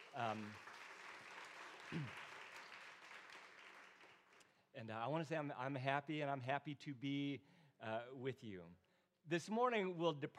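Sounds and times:
congregation applauding: 0.0 - 4.4
speech: 0.1 - 0.7, 1.9 - 2.2, 4.7 - 10.3.

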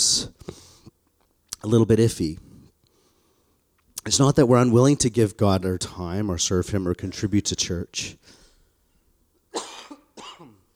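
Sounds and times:
speech: 1.6 - 2.5, 4.1 - 8.4
person coughing from a tickle in a throat tired from singing: 9.5 - 10.7.

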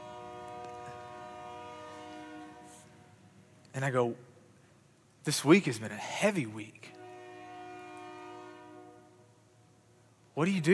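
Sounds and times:
train horn blowing a long chord-like blast: 0.0 - 3.3, 6.9 - 9.4
speech: 3.8 - 4.3, 5.2 - 7.0, 10.4 - 10.7.

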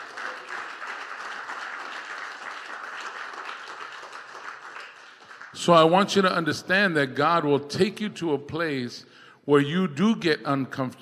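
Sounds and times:
church audience applauding: 0.0 - 6.0
speech: 5.6 - 11.0.

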